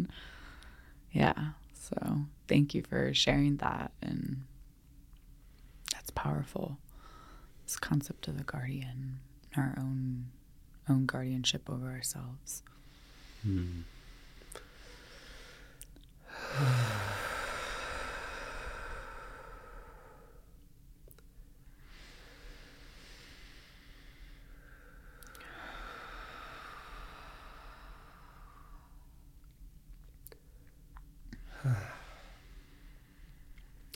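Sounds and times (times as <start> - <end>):
speech: 1.2 - 4.5, 6.1 - 6.8, 7.7 - 12.7, 13.4 - 13.9, 16.4 - 17.0
slow deep breathing: 6.9 - 7.7, 12.7 - 20.6, 21.7 - 29.2, 31.4 - 33.6.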